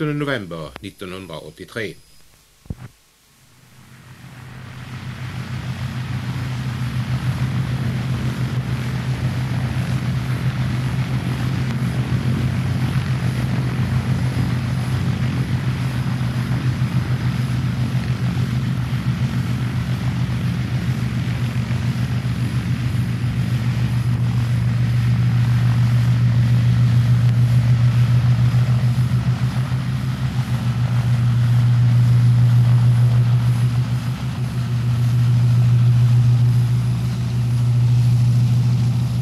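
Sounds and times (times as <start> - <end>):
speech: 0.0 - 2.1
Douglas DC-3 Tp 79 piston engines taxiing at Gävle-Sandviken airfield: 0.0 - 39.2.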